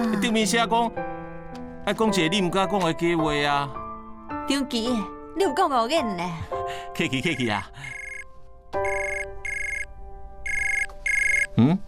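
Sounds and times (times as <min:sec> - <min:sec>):
speech: 0:00.2 - 0:01.2, 0:01.8 - 0:03.8, 0:04.5 - 0:08.0, 0:08.7 - 0:09.2, 0:11.6 - 0:11.8
phone ringing in electronic trilling bursts: 0:07.9 - 0:08.2, 0:08.8 - 0:09.9, 0:10.5 - 0:11.6.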